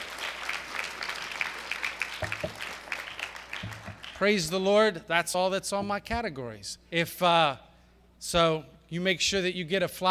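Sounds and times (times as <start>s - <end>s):
room full of people clapping: 0.0s - 4.2s
speech: 4.2s - 10.0s.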